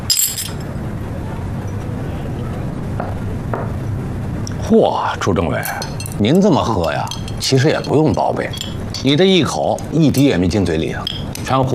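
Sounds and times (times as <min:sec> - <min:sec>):
glasses clinking together in a toast: 0:00.0 - 0:00.7, 0:05.6 - 0:11.5
low steady room murmur: 0:00.0 - 0:11.7
speech: 0:04.7 - 0:11.7.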